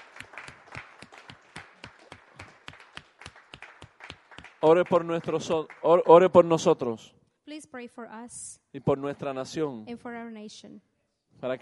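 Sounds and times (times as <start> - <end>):
crowd clapping hands in a steady brisk rhythm: 0.0 - 6.7
speech: 4.6 - 11.6.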